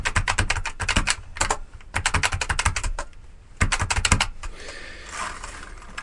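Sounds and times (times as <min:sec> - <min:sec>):
eight-dot braille keyboard plastic key presses: 0:00.0 - 0:04.4
rustling: 0:04.6 - 0:06.0.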